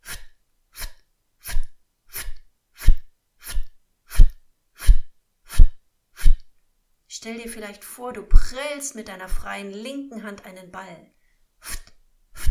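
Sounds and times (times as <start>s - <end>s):
rhythmic ft exhalations from a breathing exercise: 0.0s - 6.5s, 11.2s - 12.5s
speech: 7.2s - 11.2s.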